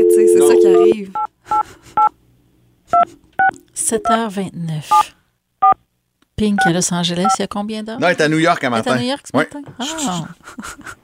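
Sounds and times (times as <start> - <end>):
telephone keypad dialing tones: 0.0 - 1.3
speech: 0.6 - 2.1, 3.0 - 5.2, 6.4 - 11.0.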